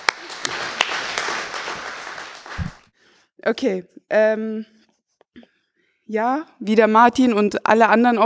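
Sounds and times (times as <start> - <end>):
audience applauding for a poet walking onto the stage: 0.0 - 2.9
speech: 3.5 - 4.8, 6.1 - 8.2.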